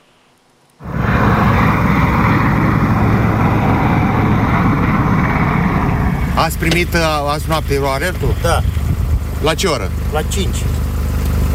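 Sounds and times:
fighter jet engines roaring while pursuing a drone: 0.8 - 11.5
speech: 6.4 - 8.8, 9.4 - 10.7.

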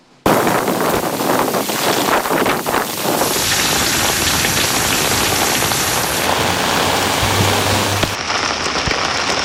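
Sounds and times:
gusting typhoon wind: 0.0 - 9.4
heavy typhoon rain pouring down: 0.2 - 9.4
water hammering surfaces: 0.3 - 8.2.

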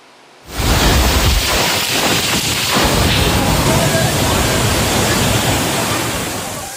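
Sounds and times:
strong wind gusts of a violent storm in Zürich Switzerland: 0.4 - 6.7.

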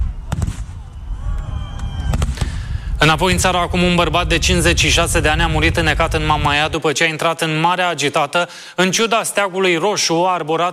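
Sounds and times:
fireworks bangs at a large pyrotechnic festival: 0.0 - 6.8
continuous rumbling crackle of fireworks: 1.9 - 6.8
speech: 3.0 - 10.7.

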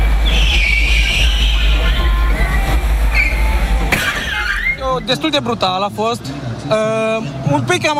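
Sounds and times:
sharp burst of noise from a staged car crash: 0.0 - 4.8
high squealing whine in a staged car crash: 0.0 - 5.6
heavy loud engine rumble in a staged car crash: 0.0 - 7.4
speech: 5.1 - 7.9.

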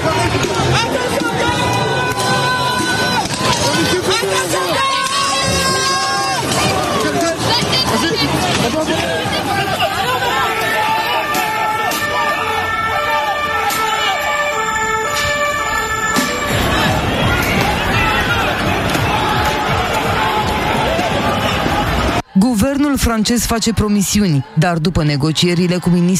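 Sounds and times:
protest crowd shouting and chanting in the street: 0.0 - 26.1
wailing siren-like tone: 10.0 - 18.0
speech: 23.0 - 26.1.

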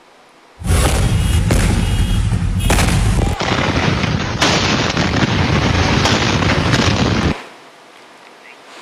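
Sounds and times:
powerful explosions at a fire site: 0.6 - 7.4.

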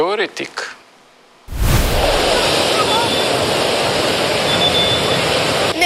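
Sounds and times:
speech: 0.1 - 0.8
strong wind: 1.5 - 3.8
large dangerous sea waves crashing onto a beach in the south: 1.5 - 5.7.

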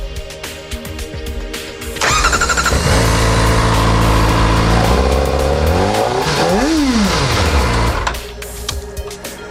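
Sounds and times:
inline four-cylinder supercharged motorcycle engine revving: 2.0 - 8.2.

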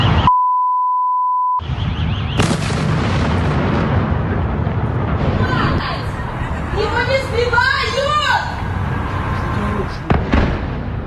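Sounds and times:
brief electronic bleep: 0.0 - 1.6
booming explosions from missile strikes on a city: 1.6 - 11.0
crackling and roaring noise: 1.6 - 11.0
faint voices: 5.4 - 10.4.

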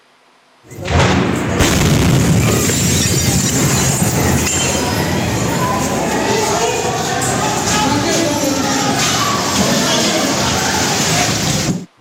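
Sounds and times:
munitions depot explosion blast and heavy roar: 0.8 - 6.0
faint shouting voices: 3.4 - 11.9.

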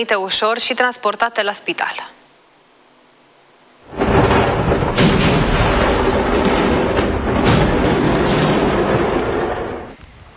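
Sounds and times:
speech: 0.0 - 2.2
sharp crackling bursts of fireworks factory explosion: 3.8 - 10.0
massive explosion at a fireworks factory in Malta: 3.9 - 10.0.

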